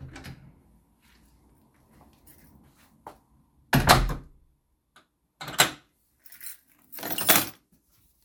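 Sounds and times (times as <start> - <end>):
keys being put down: 2.2 - 2.6, 6.2 - 7.7.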